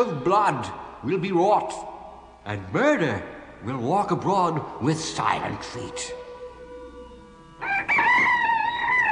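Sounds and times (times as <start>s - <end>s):
speech: 0.0s - 6.2s
rooster crowing: 7.6s - 9.1s.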